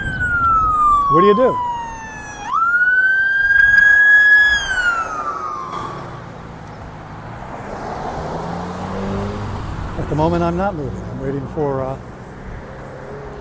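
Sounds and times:
emergency vehicle siren passing in street traffic: 0.0 - 7.2
steady rumble of street traffic: 0.0 - 13.3
speech: 1.1 - 1.7, 10.1 - 12.1.

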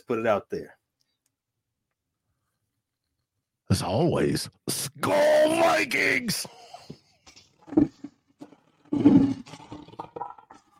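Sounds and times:
speech: 0.0 - 0.8, 3.7 - 6.6, 7.7 - 8.0
lion roar sound effect: 7.6 - 10.7.

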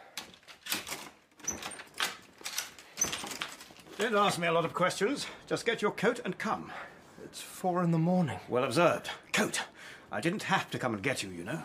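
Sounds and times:
door opening: 0.6 - 4.0
speech: 4.0 - 11.6.

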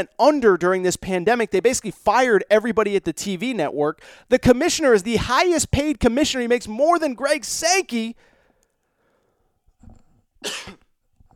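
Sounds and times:
speech: 0.0 - 8.3, 10.4 - 10.8
person coughing: 10.4 - 10.9.

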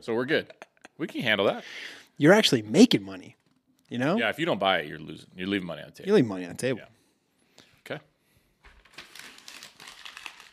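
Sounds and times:
speech: 0.0 - 7.0, 7.9 - 8.1
paper being crumpled up: 8.6 - 10.5.

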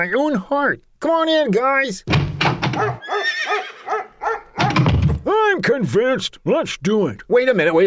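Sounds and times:
speech: 0.0 - 4.4, 5.2 - 7.8
pony whinnying with a shrill neigh: 2.7 - 5.3.

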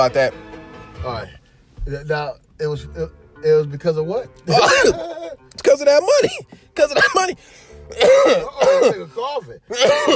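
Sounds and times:
speech: 0.0 - 10.1
person coughing hard after smoking weed: 4.5 - 5.3, 6.1 - 7.3, 7.9 - 9.1, 9.7 - 10.1.

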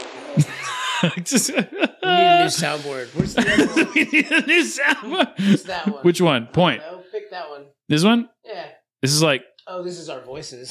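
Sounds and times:
fart sound effect: 0.0 - 0.5
laughter: 0.4 - 6.1
speech: 0.4 - 10.6.

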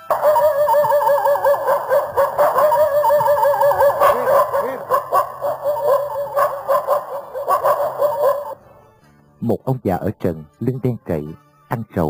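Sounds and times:
dogs yelping and whining: 0.0 - 8.6
speech: 9.5 - 12.0.

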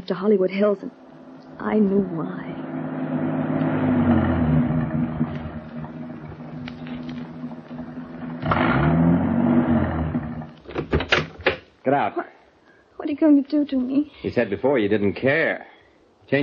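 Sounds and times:
speech: 0.0 - 1.0, 1.6 - 2.6, 11.9 - 12.3, 13.1 - 15.7, 16.3 - 16.4
car engine revving while climbing: 1.0 - 10.6.

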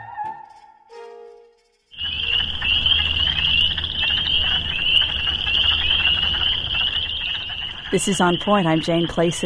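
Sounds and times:
spring peepers shrill overlapping peeps: 1.9 - 9.4
speech: 8.0 - 9.4.

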